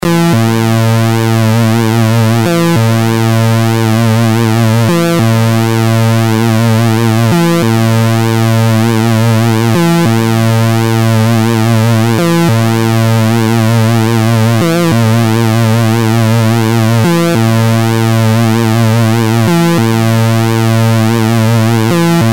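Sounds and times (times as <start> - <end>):
delayed triangle LFO on modular synthesizer: 0.0 - 22.3.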